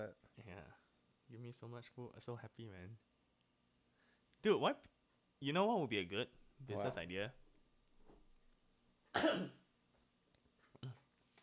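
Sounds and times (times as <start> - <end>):
speech: 0.0 - 3.1, 4.4 - 7.4
person coughing: 9.1 - 9.6.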